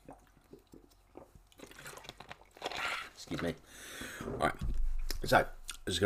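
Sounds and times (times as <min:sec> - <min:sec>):
person gulping and swallowing water: 0:00.0 - 0:03.6
speech: 0:03.3 - 0:06.0.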